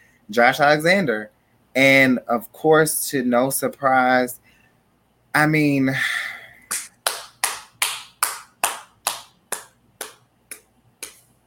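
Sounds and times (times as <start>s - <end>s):
speech: 0.3s - 4.4s, 5.3s - 6.3s
person clapping hands: 6.7s - 11.3s.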